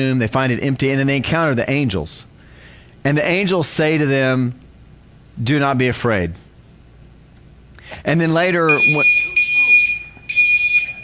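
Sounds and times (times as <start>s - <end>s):
speech: 0.0s - 2.3s, 3.0s - 4.6s, 5.4s - 6.4s, 7.9s - 9.2s
fire alarm going off in shrill high-pitched bursts: 8.6s - 11.0s.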